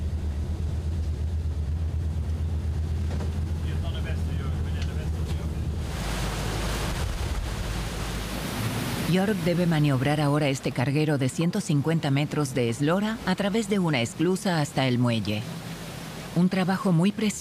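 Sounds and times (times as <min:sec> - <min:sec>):
loud rushing wash of waves on the river Ems: 0:00.0 - 0:10.8, 0:13.0 - 0:17.3
pilot boat engine droning on the river Ems: 0:00.0 - 0:17.3
speech: 0:09.1 - 0:15.6, 0:16.4 - 0:17.3.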